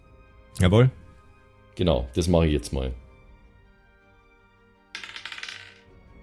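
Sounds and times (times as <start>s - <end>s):
speech: 0.6s - 1.0s, 1.8s - 3.0s
dice clattering across a hard tabletop: 4.9s - 5.9s.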